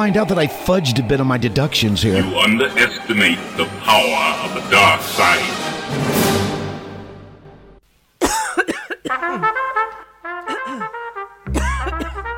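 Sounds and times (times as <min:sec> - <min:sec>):
speech: 0:00.0 - 0:06.1
person coughing harshly: 0:08.2 - 0:09.6, 0:10.4 - 0:12.3.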